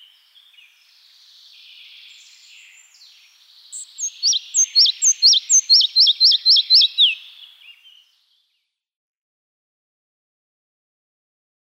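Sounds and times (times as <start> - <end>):
red-breasted flycatcher song: 0.0 - 8.8.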